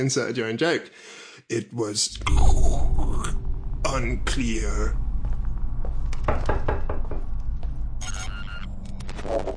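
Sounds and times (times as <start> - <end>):
speech: 0.0 - 5.0
steady low rumble: 2.1 - 9.2
firm knocking on a door: 6.2 - 7.4.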